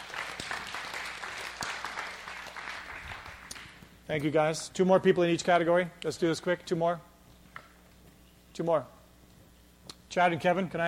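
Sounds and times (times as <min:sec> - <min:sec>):
crowd applauding with hand claps: 0:00.0 - 0:03.8
speech: 0:04.1 - 0:07.1, 0:08.6 - 0:09.0, 0:10.1 - 0:10.8.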